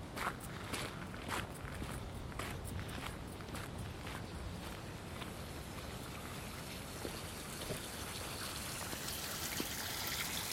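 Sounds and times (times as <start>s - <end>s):
footsteps passing over a canal lock gate: 0.2s - 5.9s
water trickling and splashing down a canal lock gate: 6.6s - 10.5s.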